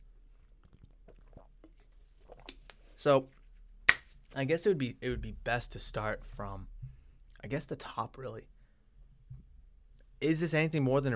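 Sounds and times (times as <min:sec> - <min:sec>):
person sipping a drink: 0:00.1 - 0:03.0
person swallowing and gulping: 0:00.6 - 0:02.7
speech: 0:03.0 - 0:03.4, 0:04.4 - 0:06.7, 0:07.4 - 0:08.5, 0:10.2 - 0:11.1.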